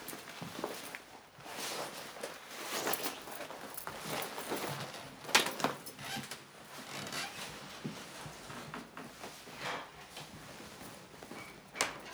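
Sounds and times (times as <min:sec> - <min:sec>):
soft rustles of clothing as a woman undresses: 0:00.0 - 0:12.0.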